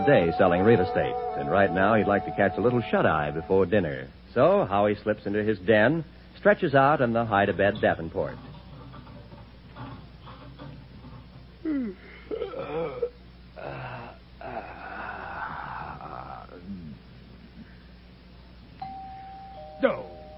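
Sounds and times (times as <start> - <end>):
speech: 0.0 - 8.5
person making groaning wheezy vocal noises: 11.6 - 17.0
buzzing doorbell ring: 18.8 - 20.3.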